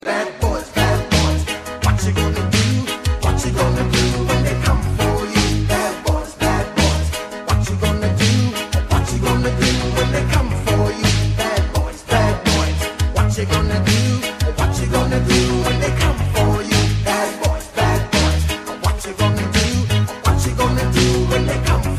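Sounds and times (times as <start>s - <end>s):
rap ringtone: 0.2s - 21.9s.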